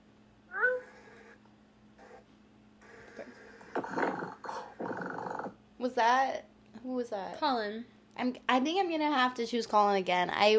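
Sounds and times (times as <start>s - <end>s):
person imitating cat meows: 0.5s - 0.9s
person imitating rough rattling cat purring: 0.5s - 1.2s, 3.7s - 5.6s
speech: 5.8s - 10.5s.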